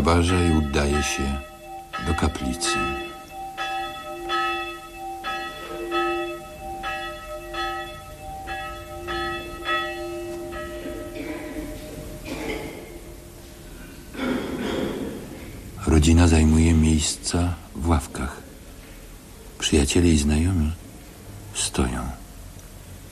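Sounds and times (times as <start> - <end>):
speech: 0.0 - 3.1, 16.1 - 18.4, 19.7 - 20.9, 21.6 - 22.2
church bell tolling for a village funeral: 0.0 - 15.3.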